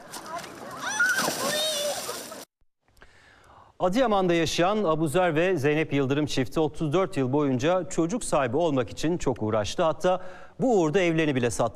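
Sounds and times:
people splashing while swimming in clean sea water: 0.0 - 2.5
speech: 3.8 - 11.7.

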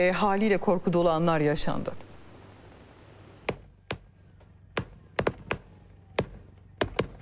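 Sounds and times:
speech: 0.0 - 2.0
fireworks bangs in a warehouse fire: 3.4 - 7.2.

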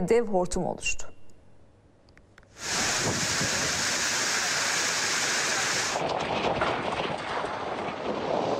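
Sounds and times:
speech: 0.0 - 1.1
downpour with hail during a storm in Manisa: 2.6 - 8.5.

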